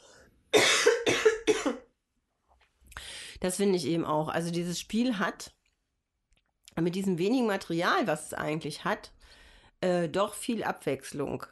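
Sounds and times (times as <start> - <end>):
coughs: 0.5 - 1.9
speech: 3.4 - 5.6, 6.8 - 9.2, 9.8 - 11.4.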